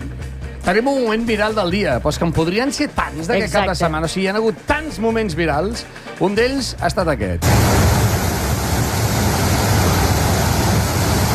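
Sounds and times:
speech: 0.7s - 7.8s
torrential floodwater rushing down a riverbed: 7.4s - 11.3s.

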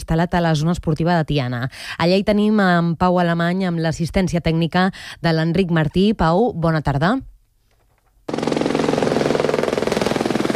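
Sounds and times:
speech: 0.1s - 7.3s
firefighting helicopter rotor chopping overhead: 8.3s - 10.5s.

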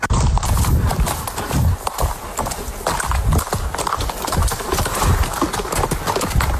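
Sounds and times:
horse hooves clip-clopping: 0.0s - 6.5s
outdoor ambient noise: 0.0s - 6.5s.

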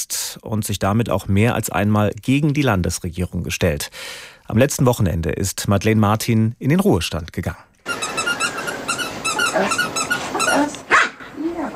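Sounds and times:
speech: 0.0s - 7.7s, 9.6s - 9.9s
squeaky ball squealing: 7.8s - 10.8s
female dog barking and yelping excitedly in a terraced-house garden: 7.8s - 11.7s.

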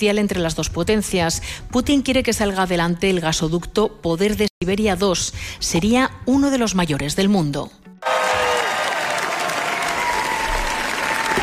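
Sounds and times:
speech: 0.0s - 8.4s
film festival audience applause: 8.0s - 11.4s.

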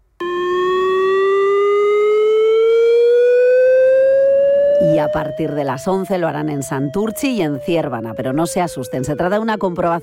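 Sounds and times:
chemical emergency warning siren wailing during a routine test of a government warning system: 0.2s - 10.0s
speech: 5.0s - 10.0s.

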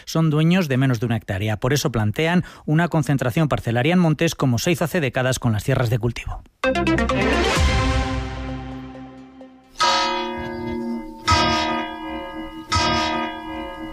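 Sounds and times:
speech: 0.0s - 7.8s
church bells ringing: 7.8s - 13.9s.

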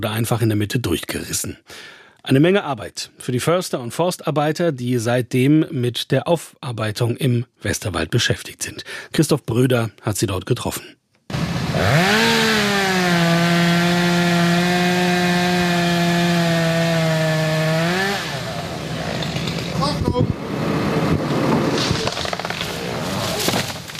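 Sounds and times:
speech: 0.0s - 11.0s, 11.8s - 12.5s
chainsaw cutting through wood: 11.3s - 23.9s.

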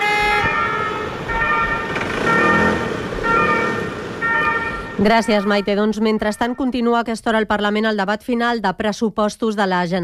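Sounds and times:
two-tone ambulance siren: 0.0s - 6.9s
street traffic rumble: 0.0s - 7.7s
speech: 5.0s - 10.0s.

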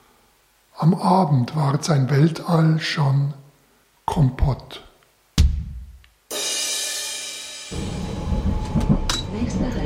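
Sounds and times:
speech: 0.8s - 3.4s, 4.1s - 4.9s, 9.4s - 9.8s
brief thud: 5.4s - 5.9s
tram rolling along its rails: 7.8s - 9.8s.

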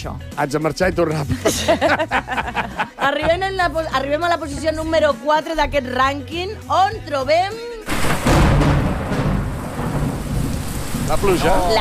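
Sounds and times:
speech: 0.0s - 7.7s, 11.1s - 11.7s
laughter: 1.3s - 3.6s
heavy rain during a thunderstorm: 7.9s - 11.7s
thunder rumbling: 7.9s - 11.7s.

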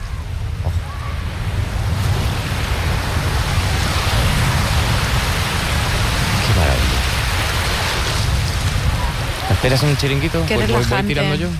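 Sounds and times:
ocean surf breaking on a beach: 0.0s - 11.5s
speech: 9.6s - 11.5s.

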